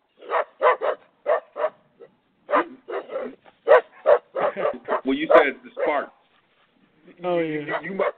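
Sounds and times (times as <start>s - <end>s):
dog barking sound effect from a soundboard: 0.2s - 6.1s, 7.6s - 8.1s
speech: 7.2s - 8.1s.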